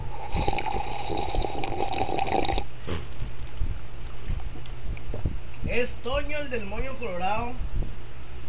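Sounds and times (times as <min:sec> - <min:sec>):
person sipping water with wet sloshing: 0:00.0 - 0:04.6
soft gulps and swallows of water: 0:00.1 - 0:04.6
speech: 0:05.8 - 0:07.7.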